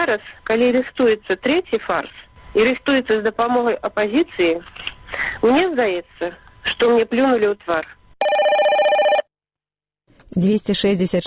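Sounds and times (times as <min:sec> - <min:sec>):
speech: 0:00.0 - 0:08.4, 0:10.3 - 0:11.2
telephone ringing in warbling burst: 0:08.2 - 0:09.3.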